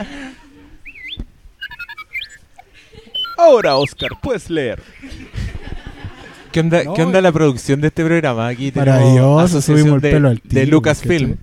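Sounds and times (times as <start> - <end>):
speech: 0.0 - 0.4, 3.4 - 5.2, 6.6 - 11.4
robot droid chirping and whistling: 0.8 - 4.3
electronic beeps from a robot droid: 0.9 - 4.3
laughter: 4.9 - 6.7.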